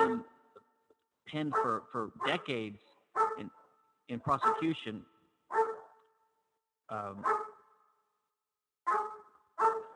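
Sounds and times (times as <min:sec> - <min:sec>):
speech: 0:01.3 - 0:05.6, 0:06.9 - 0:07.4
dog barking: 0:01.4 - 0:02.5, 0:03.1 - 0:04.9, 0:05.5 - 0:06.2, 0:07.2 - 0:07.8, 0:08.8 - 0:09.9.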